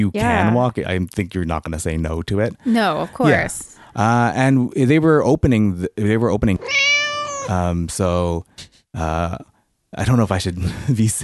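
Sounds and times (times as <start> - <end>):
speech: 0.0 - 6.9, 7.5 - 11.2
cat meowing sound effect: 6.6 - 7.6.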